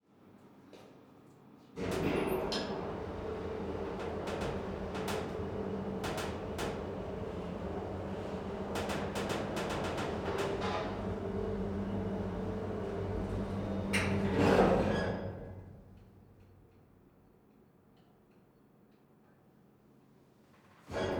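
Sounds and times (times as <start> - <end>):
cargo elevator moving up and down in an industrial hall: 1.8 - 15.7.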